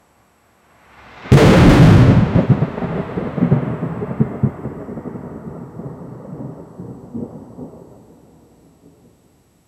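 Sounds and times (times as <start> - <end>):
sudden crack of thunder: 1.3 - 8.0.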